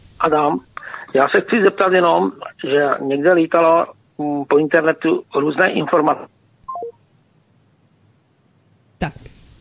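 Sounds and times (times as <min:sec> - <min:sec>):
faint telephone line hiss: 0:00.0 - 0:09.6
speech: 0:00.2 - 0:06.3, 0:09.0 - 0:09.2
electronic telephone tones of a dropped phone call: 0:06.7 - 0:07.0.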